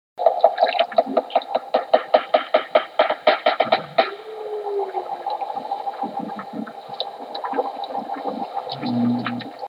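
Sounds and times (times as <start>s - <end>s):
walrus echolocation: 0.2s - 9.6s.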